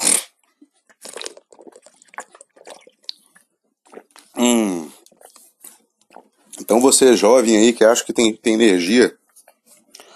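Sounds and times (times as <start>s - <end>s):
small mouth clicks: 0.0s - 5.4s
person drinking water: 0.0s - 6.7s
wet sips and gulps: 0.0s - 6.7s
speech: 4.4s - 5.0s, 6.7s - 9.2s.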